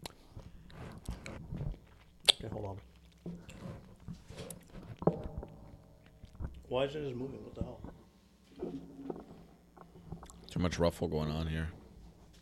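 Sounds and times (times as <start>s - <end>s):
crunchy chewing of candy into a microphone: 0.0s - 6.7s, 7.5s - 10.6s
moist mouth noises: 0.0s - 6.7s, 7.5s - 10.6s
speech: 2.4s - 3.4s, 6.7s - 7.7s, 10.6s - 11.8s.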